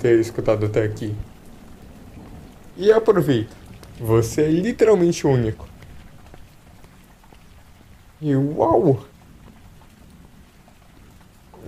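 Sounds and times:
speech: 0:00.0 - 0:01.3, 0:02.8 - 0:05.7, 0:08.2 - 0:09.1
steady rain falling: 0:00.0 - 0:11.6.

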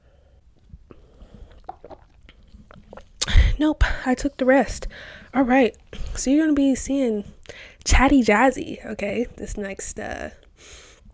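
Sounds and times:
small mouth clicks: 0:00.6 - 0:03.6
person sipping wine from a glass: 0:00.9 - 0:03.4
speech: 0:03.6 - 0:10.8.

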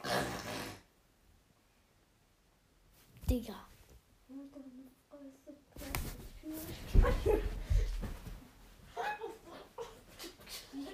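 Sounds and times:
loud raspy snore imitated by a voice: 0:00.0 - 0:00.9
speech: 0:03.3 - 0:03.7, 0:06.6 - 0:07.6
laughter: 0:06.9 - 0:07.9, 0:08.9 - 0:10.9.

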